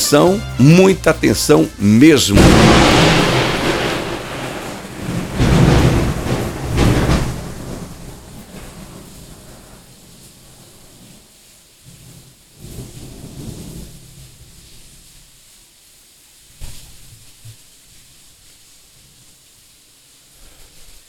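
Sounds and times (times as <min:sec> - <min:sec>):
loud deep thunder rolling and rumbling: 0:00.0 - 0:11.1, 0:12.6 - 0:14.5
steady rain-like hiss: 0:00.0 - 0:21.0
speech: 0:00.1 - 0:03.2.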